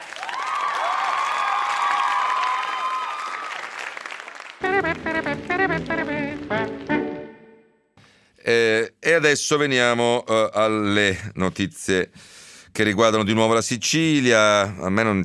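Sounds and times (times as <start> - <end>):
crowd applause: 0.0 - 7.3
speech: 8.5 - 15.2.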